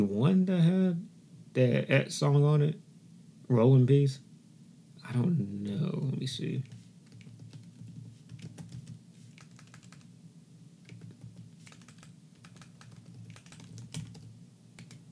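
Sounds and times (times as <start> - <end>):
speech: 0.0 - 2.8, 3.5 - 4.2, 5.1 - 6.7
typing on a computer keyboard: 6.6 - 10.1, 10.8 - 15.0.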